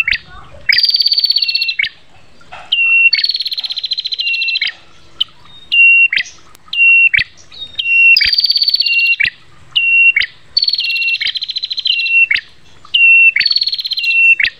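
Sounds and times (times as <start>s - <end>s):
prinia giving buzzy trilled phrases and whistled notes: 0.0s - 14.5s.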